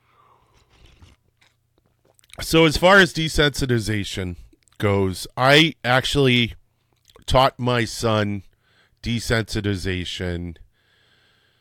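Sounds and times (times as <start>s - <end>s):
person sipping coffee: 0.1s - 2.4s
speech: 2.4s - 6.6s, 7.3s - 10.6s.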